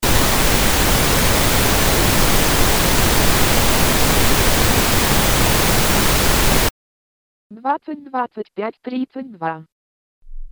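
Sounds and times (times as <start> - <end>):
loud pink noise test signal: 0.0 - 6.7
speech: 7.6 - 9.7.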